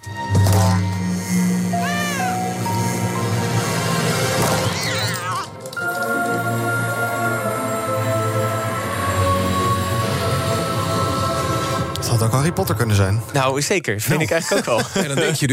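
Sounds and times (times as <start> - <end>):
cinematic orchestral trailer music: 0.0 - 13.4
cat meowing: 1.8 - 2.6
speech: 12.2 - 15.5
laughter: 14.0 - 15.5.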